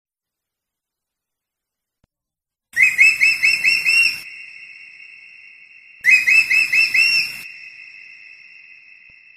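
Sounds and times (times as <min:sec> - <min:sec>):
faint continuous tone: 0:00.2 - 0:09.3
eagle calling in high thin whistled notes: 0:02.8 - 0:09.3.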